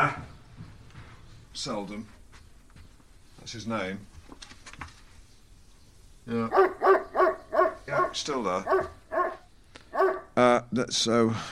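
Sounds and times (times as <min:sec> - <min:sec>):
speech: 0:01.6 - 0:02.2, 0:03.4 - 0:04.2, 0:06.3 - 0:07.0, 0:07.9 - 0:09.0, 0:10.4 - 0:11.5
large brown dog barking and yelping: 0:06.3 - 0:10.4.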